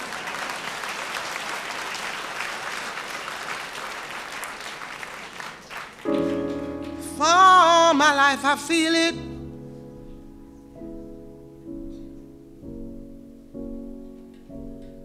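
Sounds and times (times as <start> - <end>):
crowd clapping: 0.0 - 9.0
speech: 8.0 - 9.3.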